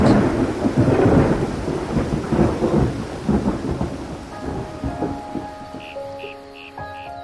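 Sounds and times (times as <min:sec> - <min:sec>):
deep rolling rumble of thunder: 0:00.0 - 0:07.2
dense wash of heavy rain: 0:00.0 - 0:07.2.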